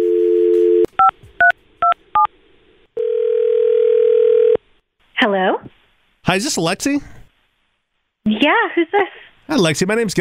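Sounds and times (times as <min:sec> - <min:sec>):
telephone dial tone: 0:00.0 - 0:01.1, 0:03.0 - 0:04.6
speech: 0:05.2 - 0:07.2, 0:08.2 - 0:10.2.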